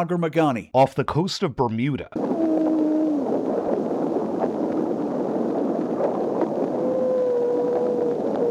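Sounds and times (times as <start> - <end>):
speech: 0.0 - 2.4
humpback whale song recorded underwater: 2.2 - 8.4.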